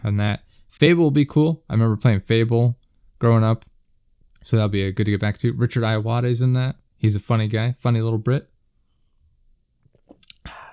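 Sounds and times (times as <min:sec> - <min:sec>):
speech: 0:00.0 - 0:03.7, 0:04.4 - 0:08.5
person sipping a drink: 0:10.0 - 0:10.7
short breathy exhale: 0:10.4 - 0:10.7.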